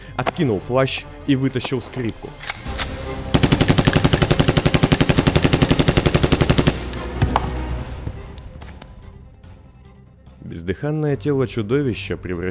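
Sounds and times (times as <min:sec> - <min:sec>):
speech: 0:00.4 - 0:02.8, 0:10.7 - 0:12.4
automatic carbine gunfire: 0:03.4 - 0:07.7.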